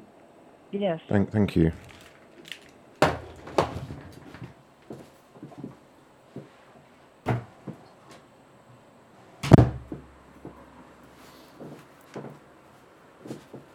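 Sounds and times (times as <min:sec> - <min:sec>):
speech: 0:00.7 - 0:01.9
office door closing with a wooden thud: 0:09.4 - 0:10.0.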